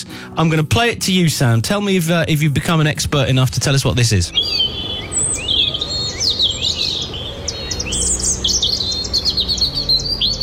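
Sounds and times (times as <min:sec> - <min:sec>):
speech: 0:00.1 - 0:04.9
robin singing warbling phrases and thin trills: 0:03.2 - 0:10.4.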